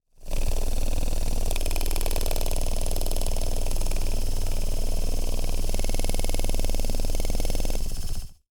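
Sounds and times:
small industrial tool motor running: 0:00.3 - 0:08.4.

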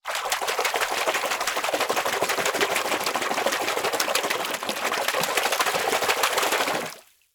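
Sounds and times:
hands splashing fast in water: 0:00.0 - 0:07.0.

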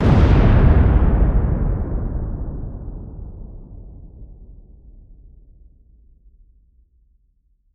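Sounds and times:
large deep dynamite demolition explosion blast: 0:00.0 - 0:05.7.

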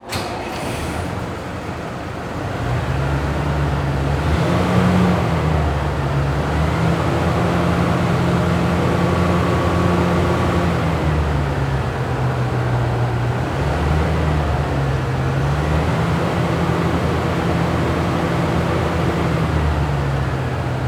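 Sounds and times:
fire truck engine starting up: 0:00.0 - 0:20.8.

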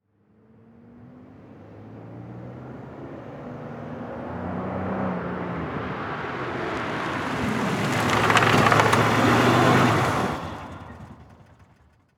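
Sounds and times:
car driving up and shutting off quickly: 0:02.8 - 0:12.0.

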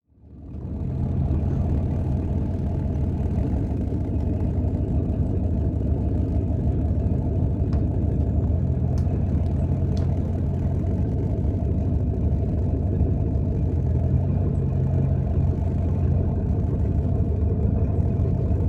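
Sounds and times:
boat engine idling: 0:00.3 - 0:18.6.

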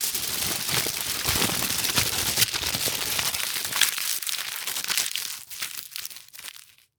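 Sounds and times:
tin foil crinkling into a ball fast: 0:00.0 - 0:06.9.

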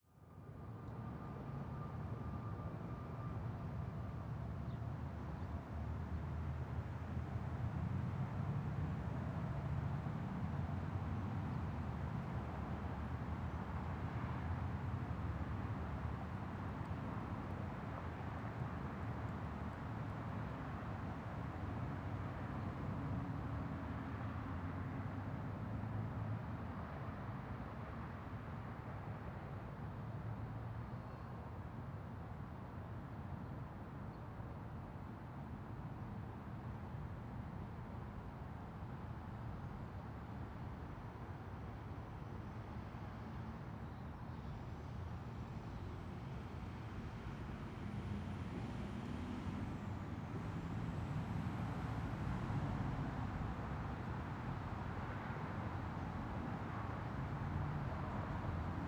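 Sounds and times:
traffic heard from under a road: 0:00.2 - 0:58.8.

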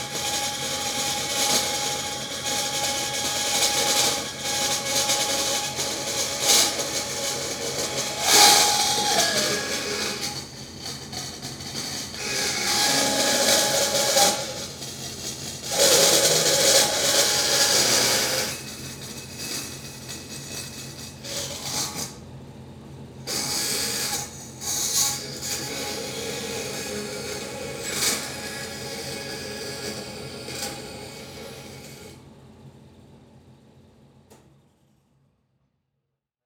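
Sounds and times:
industrial band saw cutting: 0:00.1 - 0:20.7, 0:23.3 - 0:32.1.

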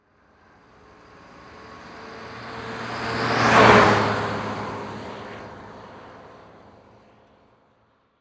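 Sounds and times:
Ford Ranger truck driving by fast: 0:01.0 - 0:06.4.

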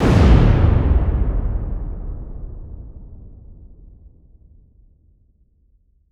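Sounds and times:
large deep powerful dynamite demolition blast: 0:00.0 - 0:04.7.

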